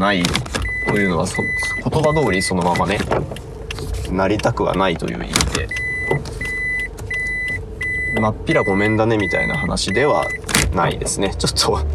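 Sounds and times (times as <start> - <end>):
speech: 0.0 - 3.5, 4.1 - 6.4, 8.2 - 11.9
car engine low rumble while maneuvering into a parking space: 0.0 - 11.9
electronic beeps from a parking sensor: 0.6 - 3.1, 5.6 - 10.5.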